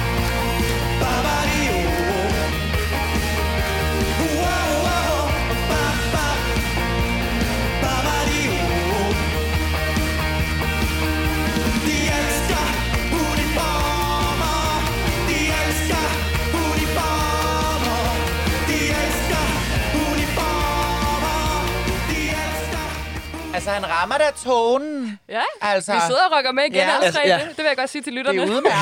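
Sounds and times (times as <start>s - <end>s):
full band accompaniment with bass and drums: 0.0s - 24.6s
man singing a song: 0.7s - 2.8s, 4.0s - 9.5s, 11.6s - 23.6s
speech: 23.8s - 28.8s
laughter: 26.8s - 28.8s.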